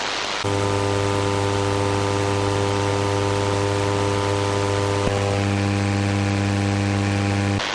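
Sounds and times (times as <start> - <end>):
SSB AM radio noise: 0.1 - 7.7.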